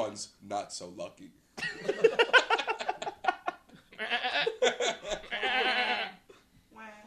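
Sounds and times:
speech: 0.2 - 2.5
human laughter or chatter: 1.6 - 6.4
goat bleating: 4.0 - 6.3.

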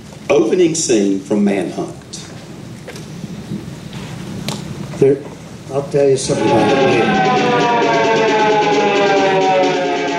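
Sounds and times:
speech: 0.3 - 2.0, 5.0 - 8.0
police car sirens wailing in front of a courthouse: 6.3 - 10.1.

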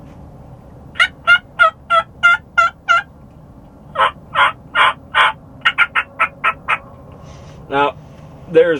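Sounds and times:
hen turkey yelps made on a mouth call: 1.0 - 3.1, 4.0 - 6.8
speech: 8.5 - 8.7.

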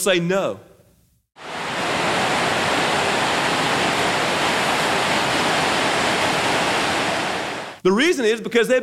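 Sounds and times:
speech: 0.0 - 0.7, 7.8 - 8.8
waterfall roaring: 1.4 - 7.8.

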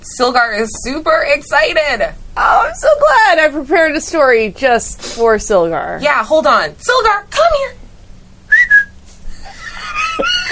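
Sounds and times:
speech: 0.2 - 7.8
person whistling to call a fish: 8.5 - 9.0
laughter: 9.3 - 10.5.

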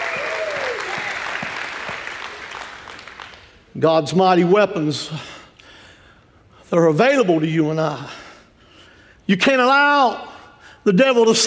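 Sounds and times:
audience cry of praise: 0.0 - 2.0
audience applause: 0.0 - 3.6
speech: 3.8 - 5.3, 6.7 - 8.2, 9.3 - 11.4.

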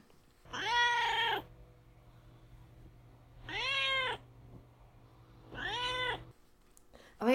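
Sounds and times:
faint low hum: 0.0 - 7.3
cat meowing: 0.5 - 1.5, 3.4 - 4.2, 5.5 - 6.3.

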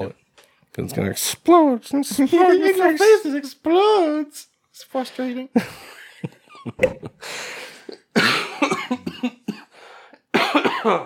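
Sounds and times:
speech: 0.8 - 7.6, 10.8 - 11.0
person getting over a cold coughing: 8.1 - 11.0.

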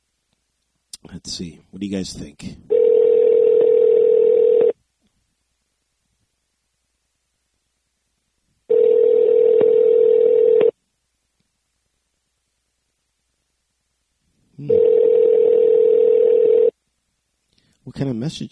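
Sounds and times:
speech: 1.1 - 2.7, 18.0 - 18.5
ringback tone of an outgoing telephone call ringing out unanswered: 2.7 - 4.8, 8.7 - 10.7, 14.6 - 16.7.

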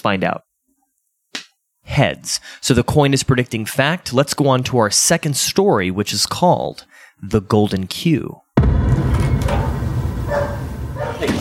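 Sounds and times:
speech: 0.0 - 0.5, 1.9 - 10.6
steady low rumble: 8.6 - 11.3
dog left waiting outside barking: 9.5 - 11.4.

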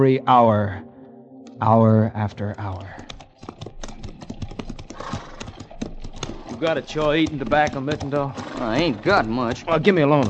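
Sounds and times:
speech: 0.0 - 0.9, 1.6 - 3.1, 6.6 - 10.2
horses walking and trotting, hooves clip-clopping: 2.3 - 10.2.

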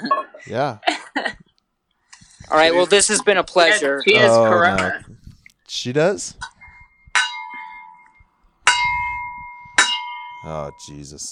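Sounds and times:
speech: 0.4 - 1.3, 2.5 - 6.5, 10.5 - 11.3
bell clanging and ringing: 6.6 - 11.3.

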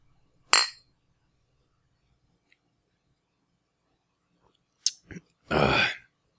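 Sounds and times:
glasses clinking in a beer toast: 0.5 - 0.9.

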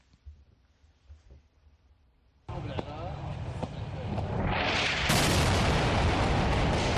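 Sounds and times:
explosions from an airstrike on southern suburbs in the Haret Hreik district: 3.8 - 6.9.

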